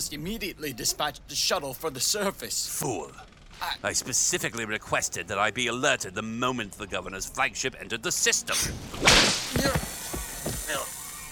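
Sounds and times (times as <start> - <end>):
speech: 0.0 - 9.9
whip crack: 9.0 - 9.8.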